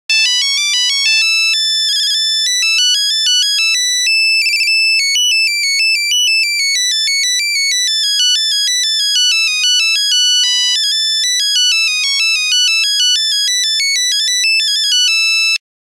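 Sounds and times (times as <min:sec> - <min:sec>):
Nokia 6210 mobile phone buzzer: 0:00.1 - 0:15.6.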